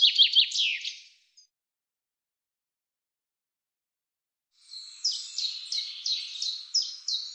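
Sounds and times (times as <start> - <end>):
common chaffinch song: 0.0 - 1.5, 4.6 - 7.3.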